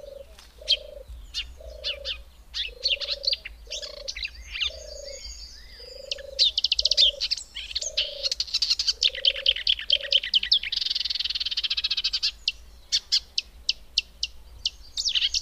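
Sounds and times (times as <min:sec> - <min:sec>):
Marsh warbler singing a rapid jumble of scratchy trills and whistles: 0:00.0 - 0:15.4.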